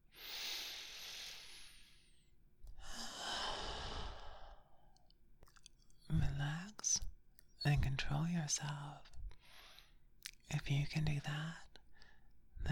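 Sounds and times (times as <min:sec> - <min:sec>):
person taking a deep breath: 0:00.1 - 0:02.1, 0:02.8 - 0:04.8
speech: 0:07.6 - 0:09.1, 0:10.5 - 0:11.7.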